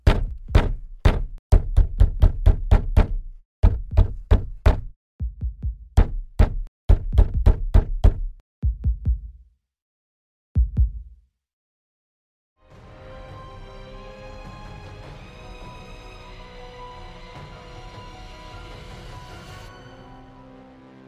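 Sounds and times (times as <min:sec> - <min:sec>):
loud sharp knocks on a door: 0:00.0 - 0:09.1.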